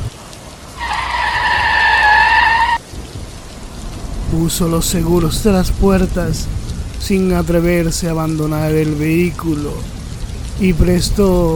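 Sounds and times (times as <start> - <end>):
steady rain-like hiss: 0.0 - 11.5
car tires screeching: 0.7 - 5.8
car braking hard at night: 0.8 - 2.8
speech: 4.4 - 10.0, 10.6 - 11.5.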